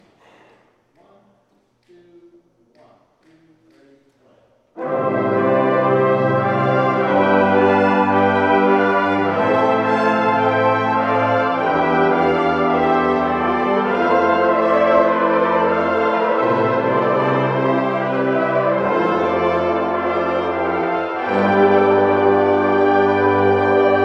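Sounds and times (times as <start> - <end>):
brass simulation: 4.8 - 24.0.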